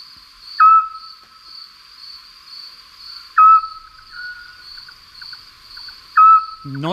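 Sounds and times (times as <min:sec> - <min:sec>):
chorus of crickets: 0:00.0 - 0:06.9
Eurasian scops owl calling: 0:00.6 - 0:01.2, 0:03.4 - 0:04.6, 0:06.1 - 0:06.8
speech: 0:06.6 - 0:06.9.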